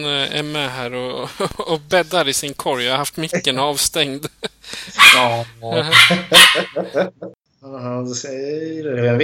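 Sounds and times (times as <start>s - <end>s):
speech: 0.0s - 9.2s
small dog barking and yipping: 5.0s - 6.9s
laughter: 5.7s - 7.4s.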